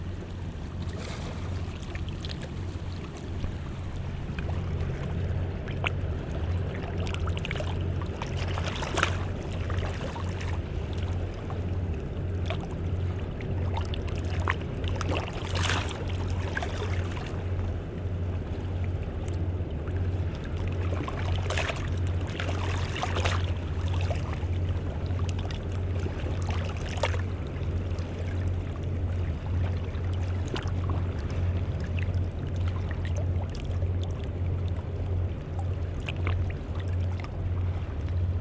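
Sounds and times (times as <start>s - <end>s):
speeding motorboat engine droning: 0.0s - 38.3s
water rushing and splashing against the hull: 0.0s - 38.3s.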